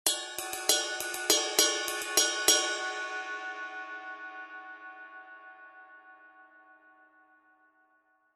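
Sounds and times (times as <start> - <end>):
22-inch medium ride cymbal: 0.1 - 3.4.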